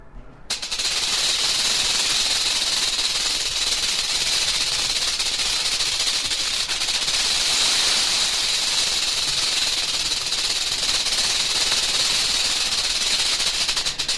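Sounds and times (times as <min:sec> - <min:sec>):
rattlesnake rattle: 0:00.5 - 0:14.1.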